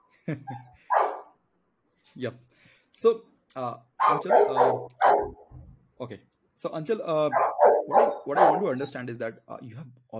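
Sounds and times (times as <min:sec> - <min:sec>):
speech: 0:00.3 - 0:01.0, 0:02.2 - 0:05.4, 0:06.0 - 0:10.1
dog barking: 0:00.9 - 0:01.3, 0:04.0 - 0:05.5, 0:07.3 - 0:08.9.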